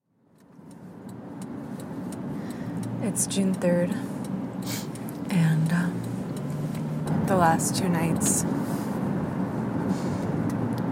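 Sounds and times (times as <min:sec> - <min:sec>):
car in motion heard from inside the cabin: 0:00.2 - 0:10.9
faint regular ticking clicks: 0:00.3 - 0:08.5
speech: 0:03.0 - 0:05.8, 0:07.3 - 0:08.8.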